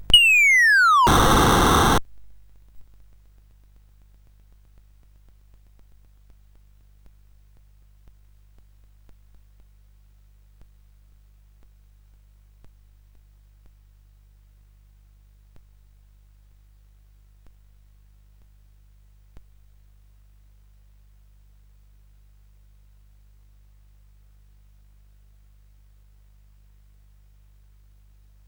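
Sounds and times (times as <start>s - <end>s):
SID chip game music: 0.2s - 1.9s.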